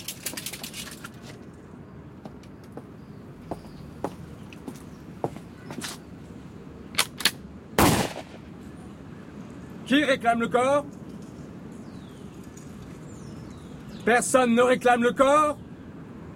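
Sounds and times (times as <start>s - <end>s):
firing squad rifle volley: 7.8s - 8.5s
speech: 9.9s - 11.0s, 14.1s - 15.6s.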